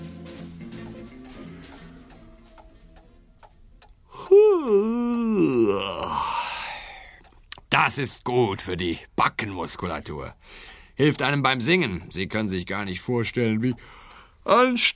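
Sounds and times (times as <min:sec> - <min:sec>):
faint ticking: 0:00.4 - 0:14.9
loud drawn-out yawn with breathy exhale: 0:04.1 - 0:07.2
speech: 0:07.8 - 0:14.9.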